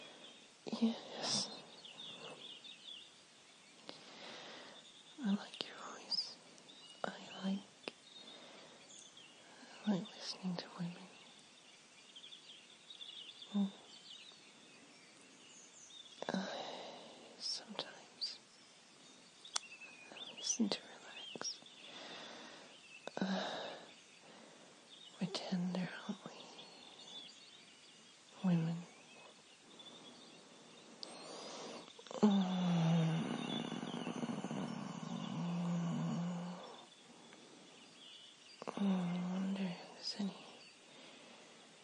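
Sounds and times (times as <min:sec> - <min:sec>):
faint birdsong: 0:00.0 - 0:41.8
soft breathy whispering: 0:00.7 - 0:02.5, 0:05.2 - 0:06.4, 0:07.0 - 0:08.0, 0:09.6 - 0:11.2, 0:13.5 - 0:13.9, 0:16.2 - 0:18.4, 0:20.1 - 0:21.6, 0:23.0 - 0:23.9, 0:25.0 - 0:27.2, 0:28.3 - 0:30.0, 0:31.1 - 0:36.9, 0:38.6 - 0:40.7
speech: 0:00.8 - 0:01.5, 0:20.6 - 0:20.8.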